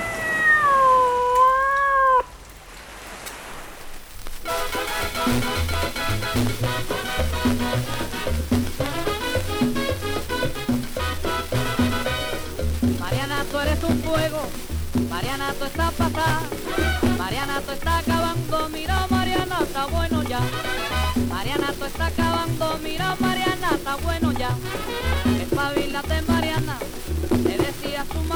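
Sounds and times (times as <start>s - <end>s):
cat meowing: 0.0s - 2.4s
hissing noise: 0.0s - 28.3s
lively band music: 4.4s - 28.3s
speech: 14.1s - 26.8s.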